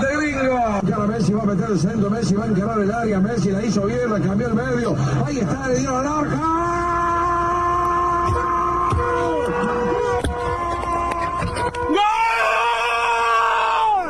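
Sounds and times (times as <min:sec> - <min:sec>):
speech: 0:00.8 - 0:06.8
man screaming in celebration of a football goal on top of a car: 0:06.3 - 0:14.0.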